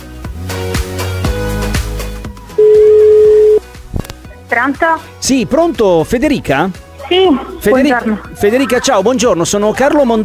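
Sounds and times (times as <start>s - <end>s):
music: 0.0s - 10.2s
telephone ringing tone as a call connects: 2.6s - 3.6s
speech: 4.5s - 10.2s.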